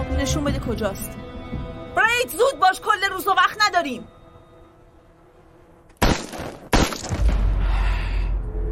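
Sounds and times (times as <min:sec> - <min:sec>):
speech: 0:00.2 - 0:01.2, 0:02.0 - 0:04.2
gunshots: 0:06.0 - 0:07.5
heavy low rumble: 0:07.2 - 0:08.7.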